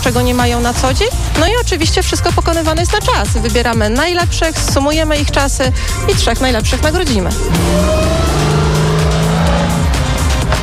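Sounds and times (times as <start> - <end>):
speech: 0.0 - 8.3
car engine revving hard during a timed driving skill trial: 5.9 - 10.6
tires squealing and skidding as the car spins and loses grip: 7.4 - 10.6.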